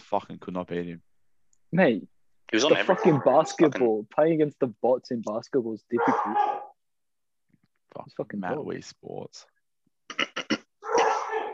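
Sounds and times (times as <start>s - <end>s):
speech: 0.1s - 1.1s, 1.7s - 6.6s, 7.9s - 9.6s
man sneezing: 10.9s - 11.5s.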